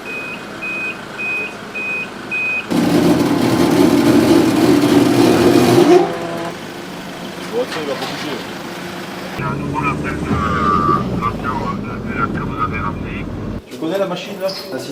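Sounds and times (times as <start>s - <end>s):
high-pitched tow truck reversing beeps: 0.0s - 2.7s
loud rumbling heavy tow truck engine: 0.0s - 13.6s.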